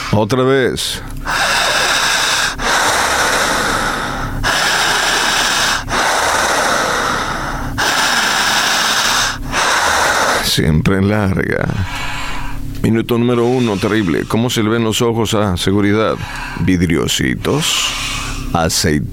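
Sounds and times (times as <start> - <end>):
speech: 0.1 - 1.5, 10.6 - 12.0, 12.8 - 19.1
patient doing strong intense deliberate breathing: 1.2 - 10.7, 11.6 - 14.8, 16.0 - 16.8, 17.5 - 18.6.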